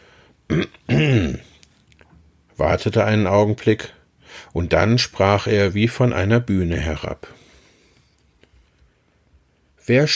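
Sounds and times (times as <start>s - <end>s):
man clearing his throat while reading a children's story aloud: 0.5s - 1.6s
speech: 2.6s - 7.4s, 9.9s - 10.1s.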